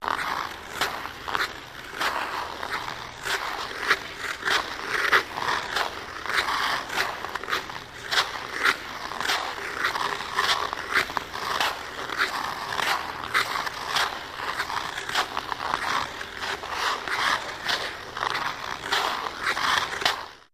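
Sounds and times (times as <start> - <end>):
steady ice skating: 0.0 - 20.5.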